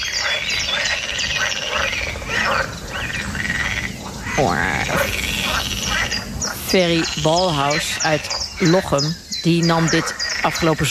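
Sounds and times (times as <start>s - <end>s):
pool frogs croaking in a pond: 0.0s - 10.8s
speech: 4.4s - 4.9s, 6.7s - 10.8s.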